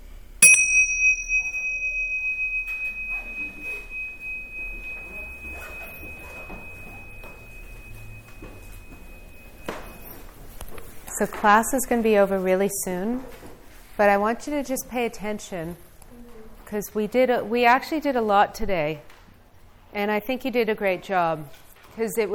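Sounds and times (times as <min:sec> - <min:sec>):
soft room noise: 0:00.0 - 0:22.3
meditation bell ringing: 0:00.4 - 0:10.5
speech: 0:11.2 - 0:13.4, 0:14.0 - 0:15.9, 0:16.7 - 0:19.1, 0:19.9 - 0:22.3.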